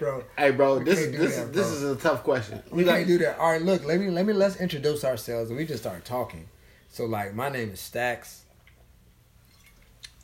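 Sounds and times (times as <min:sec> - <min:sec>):
speech: 0:00.0 - 0:08.4
low hum: 0:00.0 - 0:10.2
person sipping a drink: 0:09.5 - 0:10.2.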